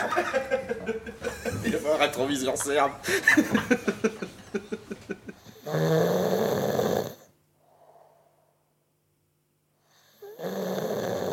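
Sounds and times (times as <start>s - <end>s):
laughter: 0.0s - 5.5s
speech: 0.2s - 1.3s, 1.9s - 4.3s
man snoring on a couch: 5.5s - 7.3s, 9.9s - 11.3s.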